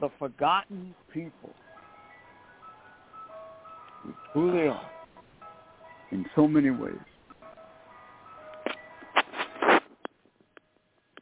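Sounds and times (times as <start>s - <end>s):
speech: 0.0s - 1.6s, 4.0s - 5.0s, 6.1s - 7.1s
tinny ice cream truck jingle outside: 1.2s - 9.2s
noisy bursts and clicks: 8.5s - 11.2s.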